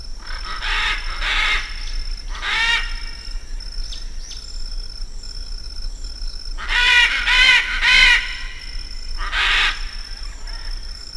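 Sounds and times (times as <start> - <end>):
military macaw squawking: 0.3 - 3.1, 6.6 - 10.6.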